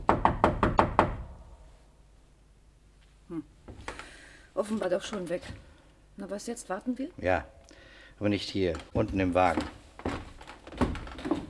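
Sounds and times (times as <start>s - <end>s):
knuckles knocking on a door in a building corridor: 0.0s - 1.4s
speech: 4.6s - 7.6s, 8.2s - 9.8s.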